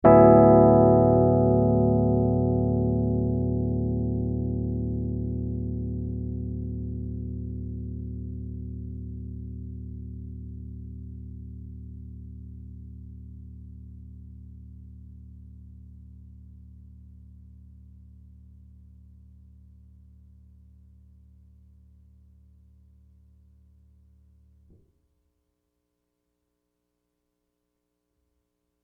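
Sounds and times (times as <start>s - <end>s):
Rhodes electric piano chord: 0.0s - 7.6s.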